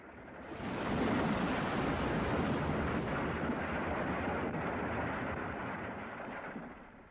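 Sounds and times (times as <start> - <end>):
volcanic eruption rumble: 0.0 - 7.0.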